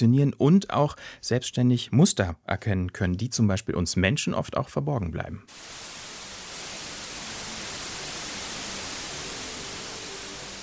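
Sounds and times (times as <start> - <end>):
speech: 0.0 - 5.8
white noise: 5.5 - 10.6.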